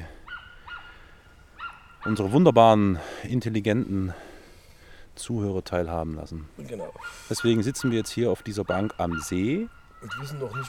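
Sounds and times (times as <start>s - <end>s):
speech: 2.0s - 4.3s, 5.2s - 10.6s
ducks quacking while feeding at a lake: 6.9s - 10.6s.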